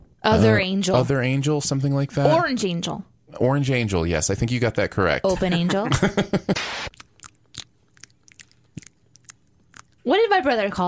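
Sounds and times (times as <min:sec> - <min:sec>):
speech: 0:00.2 - 0:06.9, 0:10.0 - 0:10.8
laughter: 0:05.3 - 0:06.6
squishy mouth clicks: 0:06.9 - 0:10.1
wet chewing of a banana: 0:06.9 - 0:10.1.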